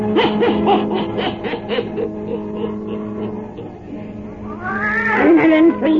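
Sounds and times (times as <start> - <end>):
laughter: 0.1 - 4.1
black cat meowing in long wavering yowls: 4.4 - 5.9.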